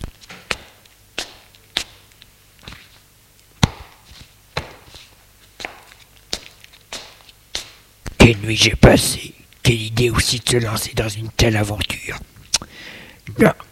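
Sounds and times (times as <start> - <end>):
barefoot footsteps on a bedroom floor: 0.0 - 8.3
speech: 8.3 - 12.3, 13.3 - 13.6.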